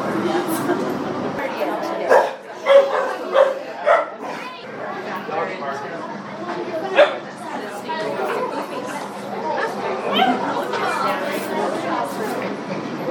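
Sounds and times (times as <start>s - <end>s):
chatter from people: 0.0s - 13.0s
puppy barking: 2.1s - 4.2s, 7.0s - 7.2s.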